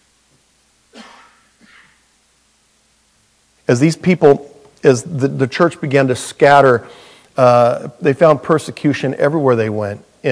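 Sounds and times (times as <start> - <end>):
raspy coughs: 0.9 - 2.0
speech: 3.7 - 10.3.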